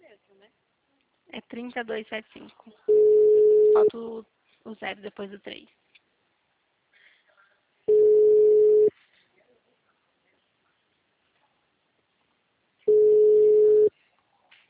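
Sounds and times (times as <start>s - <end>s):
speech: 1.3s - 5.8s
telephone ringback tone on a call: 2.9s - 3.9s, 7.9s - 8.9s, 12.9s - 13.9s.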